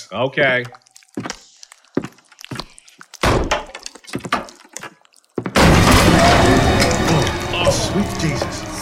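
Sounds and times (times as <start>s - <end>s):
speech: 0.0s - 1.3s
door splintering crash as it is kicked open: 5.6s - 8.8s.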